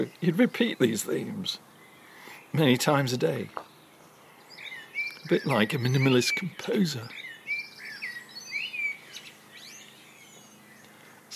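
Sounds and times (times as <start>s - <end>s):
speech: 0.0s - 1.7s, 2.5s - 3.7s, 5.2s - 7.2s
blackbird singing: 0.0s - 11.3s.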